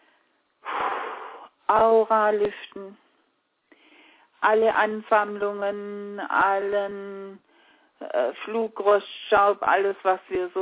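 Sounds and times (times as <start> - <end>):
breathing in and out during a guided inhale-and-exhale exercise: 0.0 - 1.6, 3.7 - 4.4, 7.4 - 8.0
speech: 1.7 - 3.0, 4.4 - 10.6.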